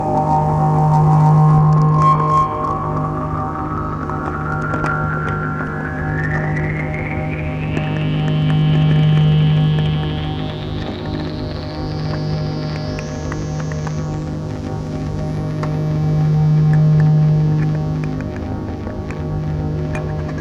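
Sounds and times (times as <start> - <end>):
sweeping drone: 0.0 - 20.3.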